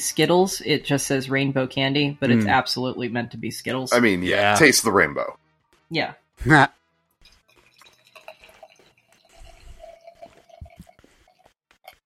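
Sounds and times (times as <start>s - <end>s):
speech: 0.0s - 6.8s
sour ale infused with rainbow candy being poured into a glass: 7.2s - 11.5s.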